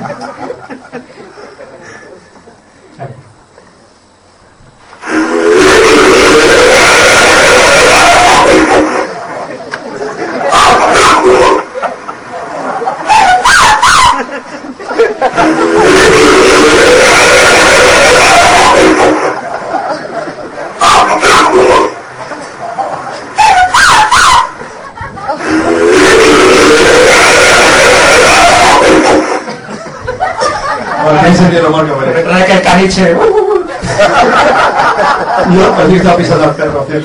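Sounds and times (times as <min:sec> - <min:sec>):
laughter: 0:00.0 - 0:03.2, 0:06.2 - 0:32.3, 0:33.0 - 0:36.6
alleged Bigfoot harsh cries: 0:05.0 - 0:09.2, 0:10.2 - 0:11.9, 0:12.9 - 0:14.4, 0:15.2 - 0:19.6, 0:20.8 - 0:22.1, 0:23.3 - 0:24.7, 0:25.3 - 0:29.5
alleged Bigfoot howling bursts from a 1978 recording in California's High Sierra: 0:05.0 - 0:09.5, 0:10.2 - 0:14.4, 0:15.0 - 0:19.8, 0:20.8 - 0:29.6.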